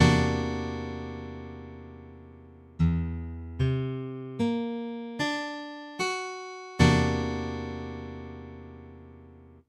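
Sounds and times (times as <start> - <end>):
C9b5 guitar chords: 0.0 - 9.6.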